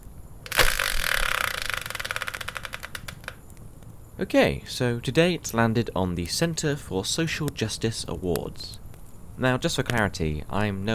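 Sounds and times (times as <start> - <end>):
prize spinner turning with ratcheting clicks: 0.5 - 3.3
speech: 4.2 - 8.8, 9.4 - 10.9.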